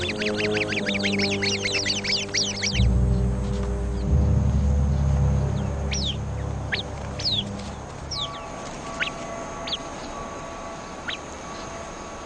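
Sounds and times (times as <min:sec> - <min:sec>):
Arabian babblers sharp chirps and whistles mobbing a snake: 0:00.0 - 0:02.9, 0:05.9 - 0:07.4
Arabian babbler harsh trilling alarm calls mobbing a viper: 0:00.0 - 0:04.1, 0:05.6 - 0:12.0
low rumbling background: 0:00.0 - 0:11.7.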